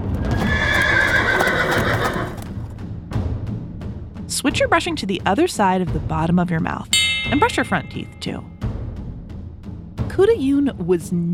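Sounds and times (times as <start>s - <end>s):
horse whinnying loudly: 0.1s - 2.6s
horse hooves clip-clopping while trotting: 0.2s - 2.6s
speech: 4.5s - 8.6s, 10.2s - 11.3s.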